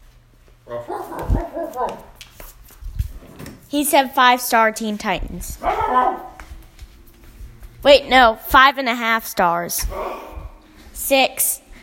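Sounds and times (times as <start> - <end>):
dog barking and vocalizing in drawn-out whiny bursts: 0.7 - 2.1, 5.6 - 6.4
speech: 3.7 - 6.2, 7.8 - 10.3, 11.1 - 11.6.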